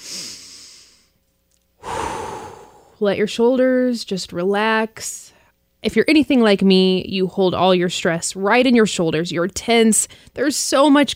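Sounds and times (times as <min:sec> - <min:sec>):
deep slow breath: 0:01.8 - 0:03.0
speech: 0:03.0 - 0:11.1.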